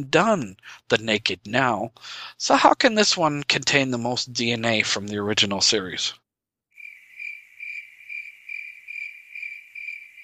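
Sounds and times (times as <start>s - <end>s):
speech: 0.0s - 6.2s
cricket chirping: 6.8s - 10.2s.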